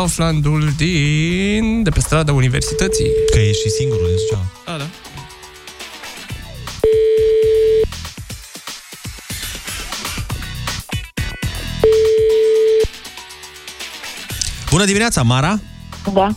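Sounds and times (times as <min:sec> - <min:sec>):
speech: 0:00.0 - 0:05.0, 0:14.8 - 0:16.3
loud busy music: 0:00.0 - 0:16.3
ringing tone of a phone call placed to a prize winner: 0:02.5 - 0:04.6, 0:06.8 - 0:07.9, 0:11.8 - 0:12.9.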